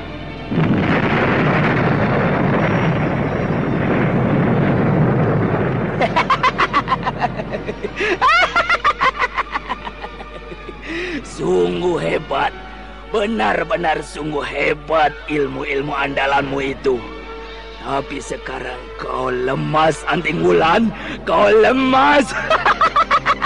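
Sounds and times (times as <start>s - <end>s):
sustained rumbling roar: 0.5s - 6.6s
loud explosion as two magical powers collide: 0.5s - 7.9s
laughter: 6.0s - 10.9s, 22.3s - 23.4s
speech: 11.4s - 17.1s, 17.8s - 22.9s.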